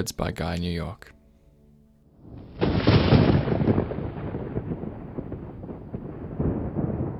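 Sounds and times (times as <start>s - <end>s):
speech: 0.0s - 1.2s
heavy rolling thunder: 2.2s - 7.1s.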